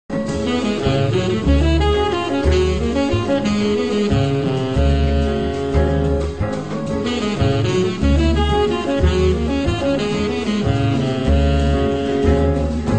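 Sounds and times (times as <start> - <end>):
vamp melody: 0.2 - 12.9.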